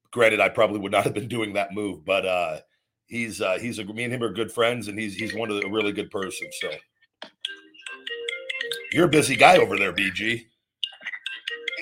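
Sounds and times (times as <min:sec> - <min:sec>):
speech: 0:00.1 - 0:06.9, 0:08.9 - 0:10.5
phone ringing with a bright electronic melody: 0:05.2 - 0:11.8.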